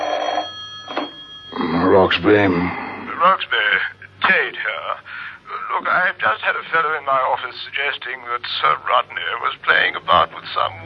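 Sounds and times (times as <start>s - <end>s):
telephone ringing: 0.0s - 2.4s
speech: 2.1s - 10.8s.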